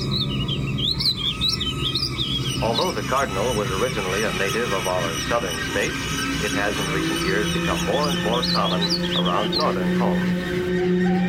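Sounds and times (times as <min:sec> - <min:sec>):
steady low hum: 0:00.0 - 0:11.2
warbling vireo song: 0:00.0 - 0:11.2
speech: 0:02.6 - 0:10.8.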